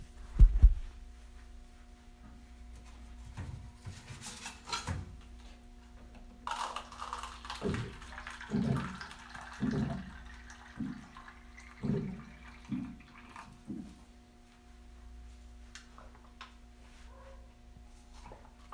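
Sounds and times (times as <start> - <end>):
faint steady hum: 0.0 - 18.7
water being drawn, gurgling: 6.5 - 14.0.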